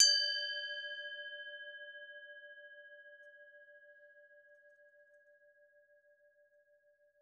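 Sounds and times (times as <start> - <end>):
temple bell: 0.0 - 5.5.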